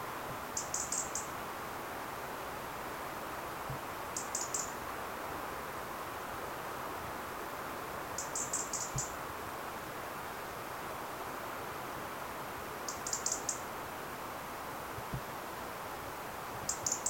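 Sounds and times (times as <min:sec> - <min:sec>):
constant low hiss: 0:00.0 - 0:17.0
European robin calling with short high-pitched thin notes: 0:00.6 - 0:01.3, 0:04.2 - 0:04.8, 0:08.2 - 0:09.2, 0:12.9 - 0:13.6, 0:16.7 - 0:17.0.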